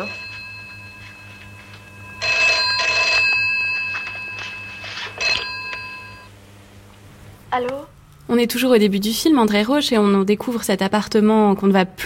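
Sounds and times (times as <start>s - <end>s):
telephone ringing: 0.0s - 6.3s
speech: 7.6s - 12.0s.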